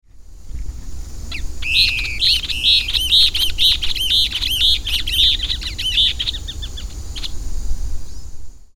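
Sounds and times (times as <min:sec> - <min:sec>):
Elaenia flavogaster calling: 0:01.3 - 0:07.5.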